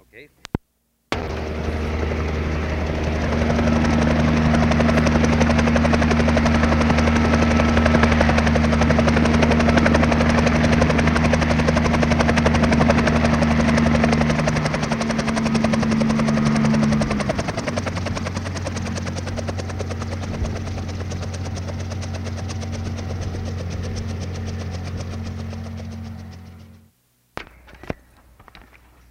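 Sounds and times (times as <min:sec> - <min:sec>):
helicopter landing with rotor thump and engine whine: 0:01.1 - 0:28.7.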